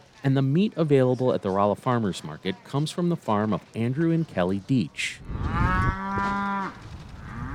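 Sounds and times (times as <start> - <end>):
outdoor noise on a ranch: 0.0 - 7.5
speech: 0.2 - 5.5
beefalo mooing on a ranch in south central Missouri: 5.3 - 7.5.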